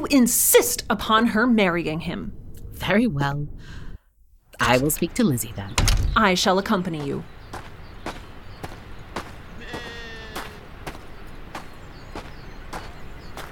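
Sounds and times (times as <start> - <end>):
speech: 0.1 - 3.8, 4.6 - 7.6
footsteps pacing in mud: 6.6 - 13.5
wavering bleat-like call: 9.6 - 10.7.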